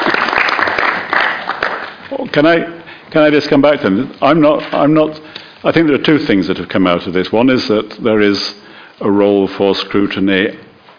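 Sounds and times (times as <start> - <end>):
room full of people applauding: 0.0 - 2.2
speech: 2.3 - 10.6.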